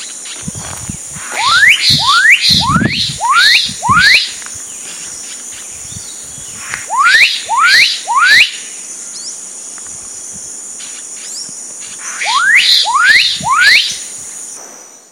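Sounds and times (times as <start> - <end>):
high-pitched insect hum: 0.0 - 15.0
Black-capped donacobius calling in upswept whistles in Sertão, Mongaguá, São Paulo state, Brazil: 1.2 - 9.4, 11.2 - 14.6.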